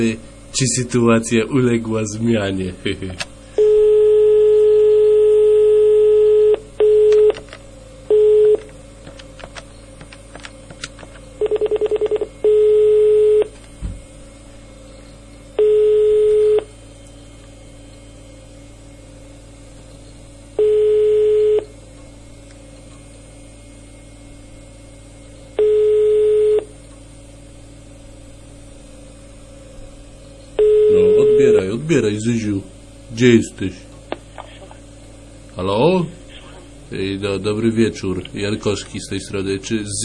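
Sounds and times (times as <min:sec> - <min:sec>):
speech: 0:00.0 - 0:03.4, 0:33.2 - 0:34.0, 0:37.4 - 0:40.0
steady low hum: 0:00.0 - 0:39.8
telephone keypad dialing tones while placing a call: 0:03.6 - 0:07.4, 0:11.4 - 0:13.5, 0:15.6 - 0:16.7
telephone ringing tones: 0:03.6 - 0:07.4, 0:08.1 - 0:08.7, 0:11.4 - 0:13.6, 0:15.6 - 0:16.7, 0:20.6 - 0:21.7, 0:25.6 - 0:26.7, 0:30.6 - 0:31.7.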